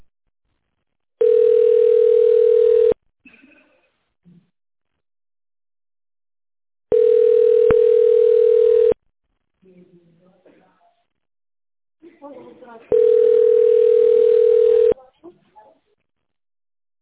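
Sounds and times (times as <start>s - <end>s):
telephone line tone while a call is connected: 1.2s - 2.9s, 6.9s - 9.0s, 12.9s - 14.9s.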